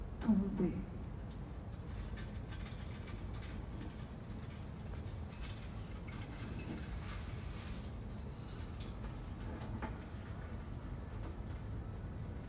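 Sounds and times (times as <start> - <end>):
heavy torrential rain: 0.2 - 12.4
speech: 0.3 - 1.0.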